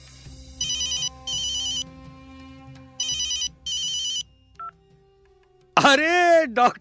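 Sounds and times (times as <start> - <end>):
telephone ringing with bright electronic trills: 0.6 - 1.9, 3.0 - 4.8
speech: 5.9 - 6.7.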